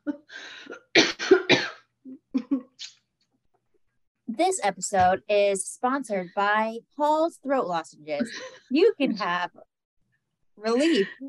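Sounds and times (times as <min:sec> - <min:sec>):
person coughing after something went down the wrong pipe: 0:00.7 - 0:02.7
speech: 0:04.6 - 0:09.7, 0:10.6 - 0:11.2.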